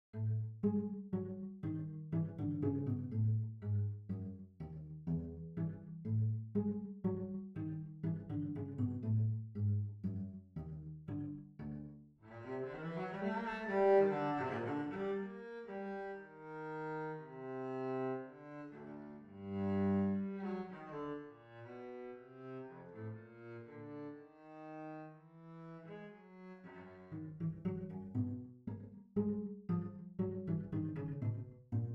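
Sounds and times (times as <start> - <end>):
cello: 0.0 - 31.9.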